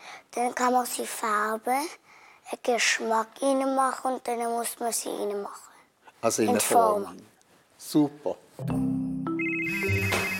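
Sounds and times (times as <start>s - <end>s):
speech: 0.4s - 8.9s
telephone electronic ringtone: 9.3s - 10.3s.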